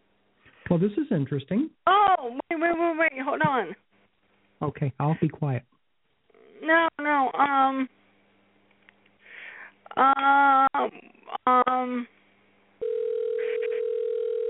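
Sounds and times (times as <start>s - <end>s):
speech: 0.7s - 3.9s, 4.6s - 5.7s, 6.6s - 8.0s, 10.0s - 12.2s
telephone dial tone: 12.8s - 14.4s.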